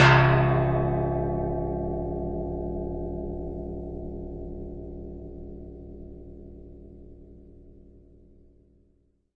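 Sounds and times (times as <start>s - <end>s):
long gong stick hit: 0.0s - 7.5s.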